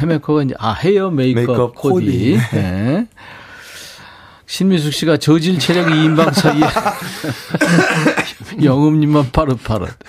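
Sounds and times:
speech: 0:00.0 - 0:03.4, 0:04.5 - 0:10.0
person talking or chuckling: 0:05.6 - 0:08.7
person coughing: 0:07.5 - 0:08.5.

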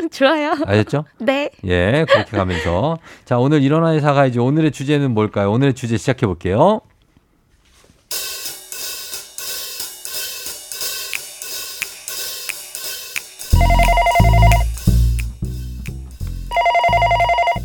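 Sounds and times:
speech: 0:00.0 - 0:06.9
laughter: 0:02.0 - 0:02.9
phone ringing with an electronic ringtone melody: 0:13.6 - 0:14.7, 0:16.5 - 0:17.6.

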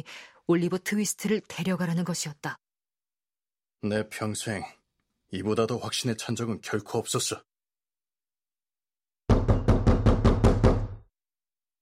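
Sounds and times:
speech: 0:00.0 - 0:02.6, 0:03.8 - 0:07.5
knocking on a gate: 0:09.3 - 0:11.0.

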